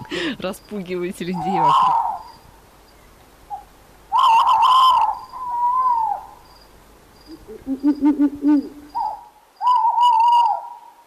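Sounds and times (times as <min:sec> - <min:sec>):
speech: 0:00.2 - 0:02.0
eagle owl hooting: 0:01.3 - 0:02.4, 0:03.5 - 0:06.4, 0:07.3 - 0:11.0.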